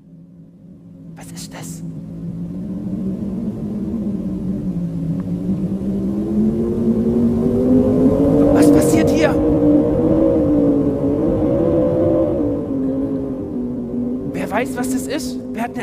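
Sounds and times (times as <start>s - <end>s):
speech: 1.2s - 2.4s
storm wind roaring: 1.9s - 15.8s.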